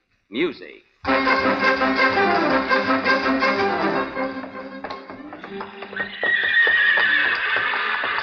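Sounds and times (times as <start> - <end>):
speech: 0.3 - 3.5
horse hooves clopping: 1.1 - 8.2
horses whinnying: 5.5 - 8.2.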